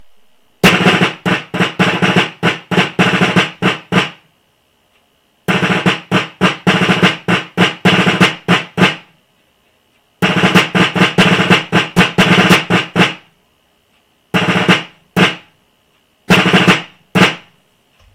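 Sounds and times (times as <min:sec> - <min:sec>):
fife and drum playing a call: 0:00.0 - 0:04.2, 0:05.5 - 0:09.0, 0:10.2 - 0:13.2, 0:14.3 - 0:15.4, 0:16.3 - 0:18.1.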